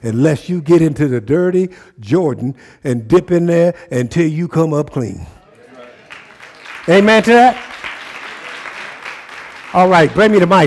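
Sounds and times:
speech: 0.0s - 5.4s, 6.8s - 7.8s, 9.7s - 10.6s
crowd applauding: 5.4s - 10.6s.

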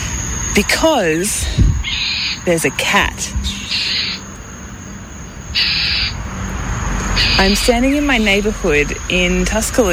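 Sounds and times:
cars going past in a Tuscaloosa neighborhood: 0.0s - 9.9s
speech: 0.6s - 1.7s, 2.4s - 3.8s, 7.4s - 9.9s
Northern Mockingbird scolding a roaming pet cat at dusk: 1.7s - 4.4s, 5.5s - 6.2s, 7.1s - 8.4s.

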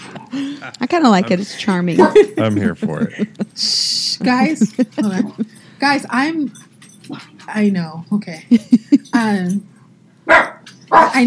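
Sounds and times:
laughter: 0.0s - 5.6s, 8.5s - 9.2s
speech: 0.3s - 9.7s, 10.3s - 11.2s
small dog barking: 2.0s - 2.3s, 10.3s - 11.2s.

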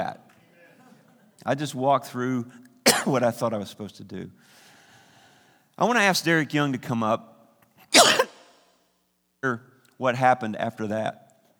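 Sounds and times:
speech: 1.4s - 4.6s, 5.8s - 7.3s, 9.4s - 11.2s
single harsh cough: 2.9s - 3.2s, 8.0s - 8.6s.

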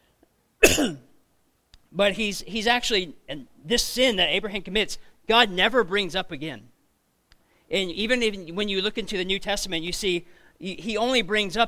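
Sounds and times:
person coughing: 0.6s - 1.1s
speech: 0.8s - 1.0s, 1.9s - 6.7s, 7.7s - 11.6s.

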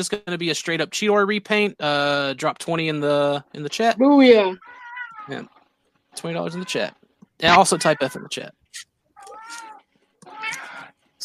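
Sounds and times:
speech: 0.0s - 5.6s, 6.2s - 8.9s
cat meowing: 4.6s - 5.4s, 6.4s - 8.3s, 9.2s - 10.9s.

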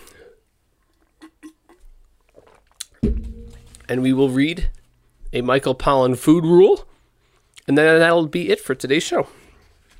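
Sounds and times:
person sipping and swallowing water: 0.9s - 3.9s
speech: 3.9s - 6.9s, 7.7s - 9.4s.

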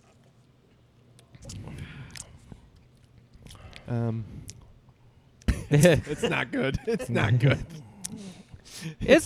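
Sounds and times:
people sipping a root beer vodka cocktail: 1.2s - 5.0s
speech: 3.9s - 4.5s, 5.7s - 7.8s, 8.8s - 9.2s.

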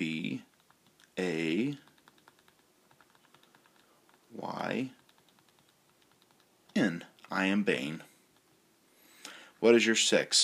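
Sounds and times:
computer keyboard typing: 0.4s - 7.4s
speech: 4.8s - 5.0s, 6.8s - 8.1s, 9.6s - 10.4s.

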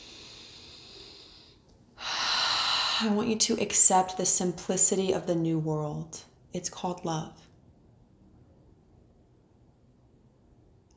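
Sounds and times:
deep breath: 0.0s - 3.1s
speech: 3.0s - 7.4s.

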